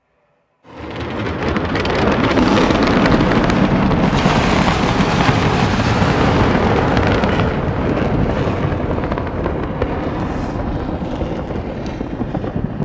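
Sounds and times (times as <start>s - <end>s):
sun monster projectile: 0.7s - 11.7s.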